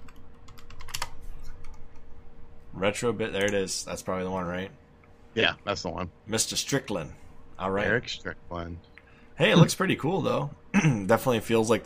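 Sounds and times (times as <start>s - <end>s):
typing on a computer keyboard: 0.0s - 1.8s
speech: 2.8s - 11.8s.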